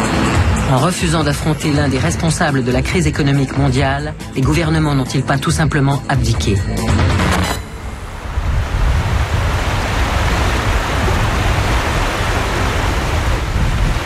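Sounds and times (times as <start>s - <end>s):
speech: 0.7s - 7.3s
small river rushing under a bridge: 7.6s - 14.0s.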